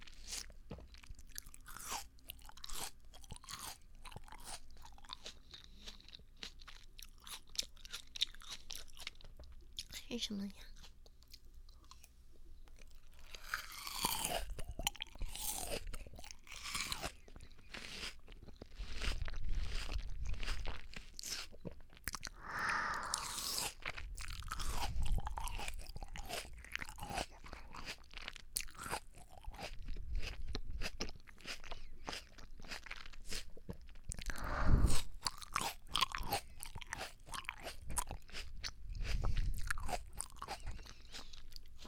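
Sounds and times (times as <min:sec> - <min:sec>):
chewing and crunching small sweet melon: 0:00.0 - 0:41.8
speech: 0:10.1 - 0:10.7.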